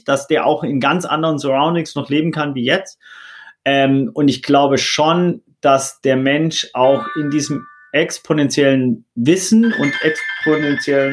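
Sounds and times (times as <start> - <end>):
speech: 0.0 - 11.1
alarm clock ringing with an electronic tone: 6.9 - 8.4, 9.6 - 11.1.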